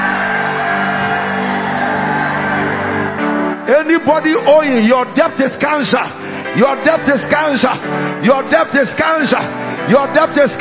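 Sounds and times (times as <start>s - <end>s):
crowd shouting: 0.0s - 3.4s
speech: 3.8s - 10.5s.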